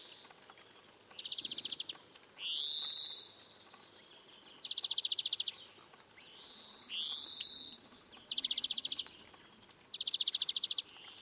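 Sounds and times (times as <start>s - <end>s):
European greenfinch Chloris chloris song: 0.0s - 11.1s.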